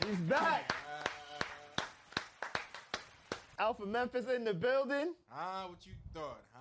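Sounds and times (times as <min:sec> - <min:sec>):
hand claps: 0:00.0 - 0:03.6
speech: 0:00.1 - 0:00.7, 0:03.6 - 0:06.5.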